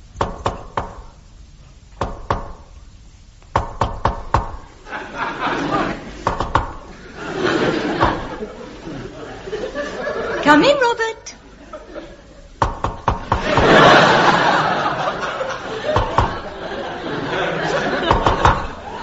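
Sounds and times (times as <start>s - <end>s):
secret-knock rhythm on a wooden door by a visitor arriving: 0.2s - 1.1s, 2.0s - 2.7s, 3.5s - 4.7s, 6.2s - 6.9s, 12.6s - 13.7s, 16.0s - 16.5s, 18.1s - 18.7s
people chuckling: 4.8s - 10.8s, 11.4s - 12.6s, 13.3s - 19.0s
speech: 10.5s - 11.0s.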